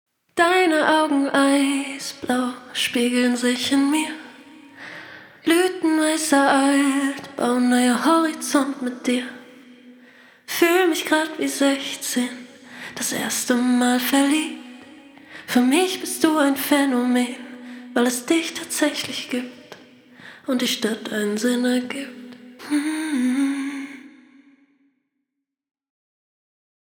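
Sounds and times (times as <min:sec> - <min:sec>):
voice with reverb from back and side walls: 0:00.4 - 0:24.5.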